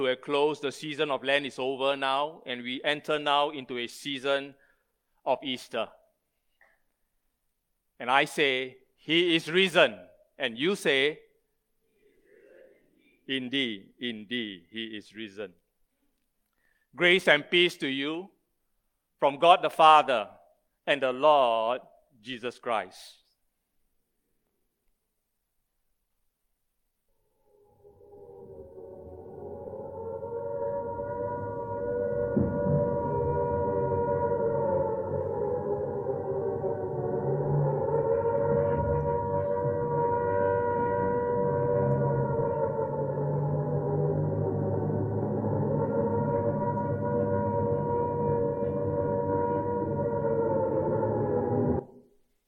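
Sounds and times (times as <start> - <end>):
speech: 0.0 - 4.6, 5.2 - 6.0, 8.0 - 11.2, 13.3 - 15.6, 16.9 - 18.4, 19.2 - 23.2
air raid siren wailing on a quiet evening: 27.2 - 52.2.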